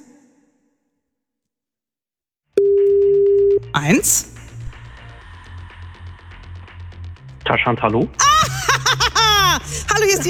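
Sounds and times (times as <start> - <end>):
single-pitched telephone ringing tone while calling: 2.6 - 3.7
speech: 3.7 - 4.3, 7.5 - 8.3, 10.0 - 10.2
laughter: 8.2 - 10.2.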